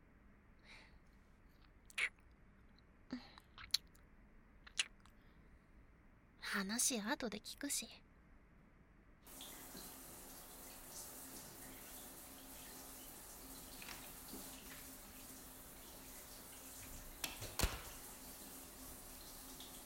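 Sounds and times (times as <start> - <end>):
speech: 6.5 - 8.1
shower water running: 9.3 - 19.8.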